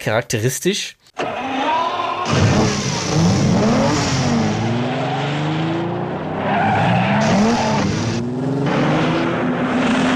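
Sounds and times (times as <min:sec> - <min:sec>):
speech: 0:00.0 - 0:01.0
powerful Ferrari car engine starting and revving: 0:02.2 - 0:10.1.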